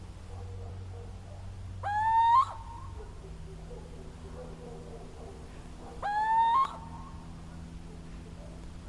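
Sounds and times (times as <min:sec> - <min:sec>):
soft background hum: 0:00.0 - 0:08.8
little owl giving nasal territorial hoots: 0:01.8 - 0:03.2, 0:06.0 - 0:07.3.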